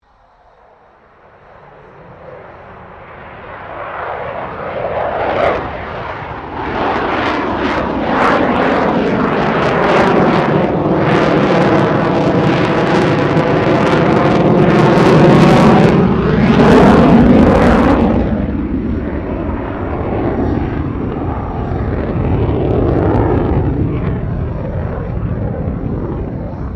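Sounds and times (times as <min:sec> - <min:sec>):
2009 FA-18E Super Hornet fighter jet passing: 0:00.0 - 0:26.7.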